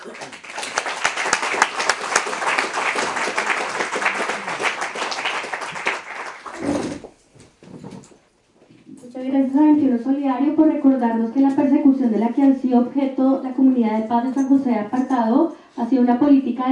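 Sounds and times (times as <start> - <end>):
crowd applauding: 0.0 - 7.2
speech: 9.5 - 16.7.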